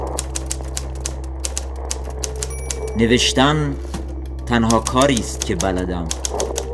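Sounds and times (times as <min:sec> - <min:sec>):
typewriter keystrokes: 0:00.0 - 0:03.0, 0:04.6 - 0:06.7
speech: 0:03.0 - 0:03.9, 0:04.5 - 0:06.2.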